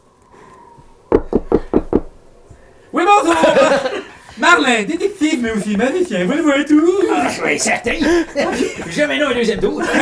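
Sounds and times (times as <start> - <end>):
firm knocking on a door: 1.1 - 2.1
laughter: 3.1 - 4.4, 6.8 - 10.0
speech: 4.6 - 10.0.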